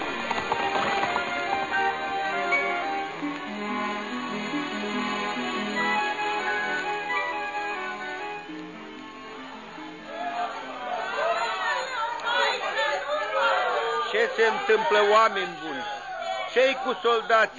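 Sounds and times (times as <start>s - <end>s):
horses' hooves clip-clopping: 0.0s - 3.0s
busy crowd murmur of many voices: 0.0s - 17.5s
speech: 14.4s - 17.5s.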